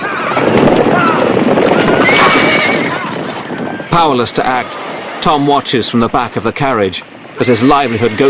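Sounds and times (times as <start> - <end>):
horses whinnying and neighing in agitated bursts: 0.0 - 3.9
speech: 4.0 - 8.2.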